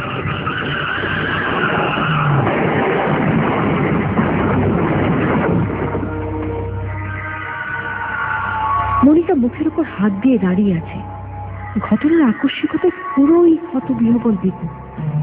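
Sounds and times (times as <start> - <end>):
car engine: 0.0 - 7.4
car tires screeching as it skids and brakes hard at the edge of a road: 0.0 - 9.2
speech: 9.2 - 15.2.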